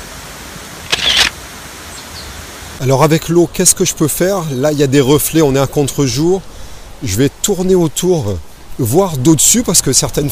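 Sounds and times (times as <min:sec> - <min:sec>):
camera shutter firing as a photo is taken: 0:00.9 - 0:01.4
speech: 0:02.8 - 0:10.3.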